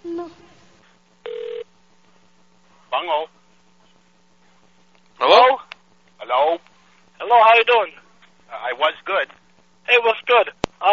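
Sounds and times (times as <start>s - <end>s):
steady low hum: 0.0s - 10.9s
mobile phone dialing tones and beeps: 1.3s - 1.6s.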